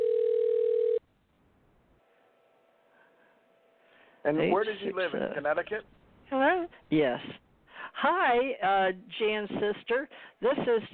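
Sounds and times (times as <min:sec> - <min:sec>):
electronic ringback tone over a phone line: 0:00.0 - 0:01.0
speech: 0:04.2 - 0:07.4, 0:08.0 - 0:10.9.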